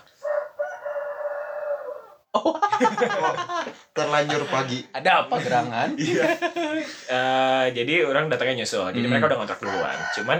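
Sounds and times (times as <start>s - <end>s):
rooster crowing: 0.2s - 2.2s, 9.6s - 10.3s
speech: 2.3s - 10.3s
laughter: 2.4s - 7.1s.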